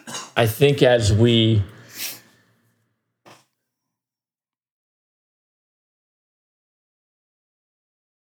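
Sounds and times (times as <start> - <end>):
faint coughs turned away from the microphone: 0.0 - 0.6
speech: 0.4 - 1.7.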